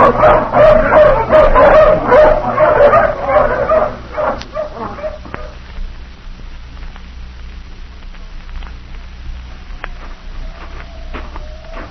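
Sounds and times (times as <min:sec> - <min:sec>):
pack of hounds barking and yipping: 0:00.0 - 0:05.6, 0:10.4 - 0:11.9.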